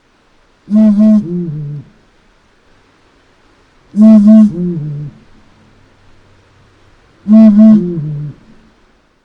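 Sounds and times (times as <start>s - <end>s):
Blakiston's fish owl calling: 0.7s - 2.0s, 3.9s - 5.3s, 7.2s - 8.5s.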